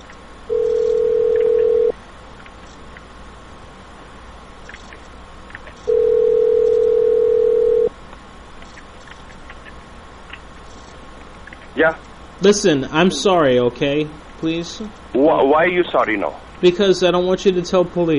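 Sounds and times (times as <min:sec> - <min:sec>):
telephone line tones while calling someone: 0:00.5 - 0:02.0, 0:05.9 - 0:07.9
speech: 0:11.8 - 0:18.1.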